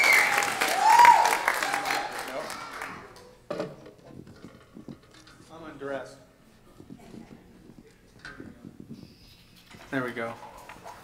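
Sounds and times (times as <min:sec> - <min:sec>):
people whooping: 0:00.0 - 0:03.1
crowd clapping in a big room: 0:00.0 - 0:03.4
speech: 0:10.0 - 0:10.5.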